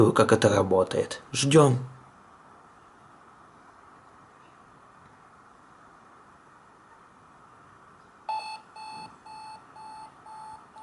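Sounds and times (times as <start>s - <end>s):
speech: 0.0s - 2.0s
alarm clock buzzer beeping: 8.3s - 10.8s.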